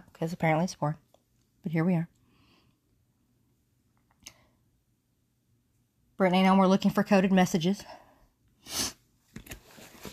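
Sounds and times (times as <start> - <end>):
speech: 0.2 - 1.0, 1.6 - 2.2, 6.2 - 8.0, 8.6 - 9.0
wet sniff from a runny nose: 8.6 - 9.0.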